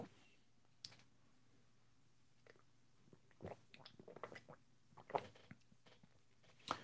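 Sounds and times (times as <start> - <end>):
person sipping water from a glass: 2.4 - 5.6.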